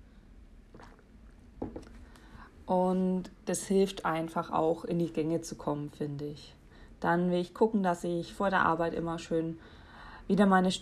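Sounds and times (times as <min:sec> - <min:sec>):
soft wet mouth and swallowing sounds: 0:00.7 - 0:02.0
person sipping water: 0:00.7 - 0:02.4
speech: 0:02.7 - 0:10.7.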